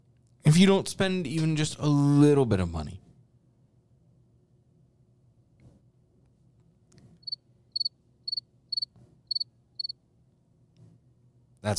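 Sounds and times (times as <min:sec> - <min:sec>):
low soft hum: 0:00.0 - 0:11.7
speech: 0:00.5 - 0:03.0
crickets chirping: 0:07.2 - 0:10.0.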